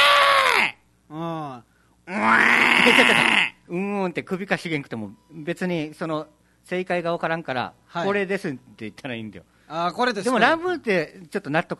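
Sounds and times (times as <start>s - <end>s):
person imitating a happy water buffalo lowing: 2.1s - 3.6s
speech: 4.1s - 11.7s.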